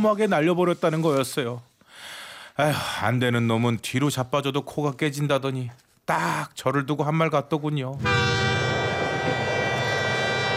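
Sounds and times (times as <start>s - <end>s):
speech: 0.0s - 8.5s
distant train rumbling with a faint tonal hum: 8.0s - 10.5s.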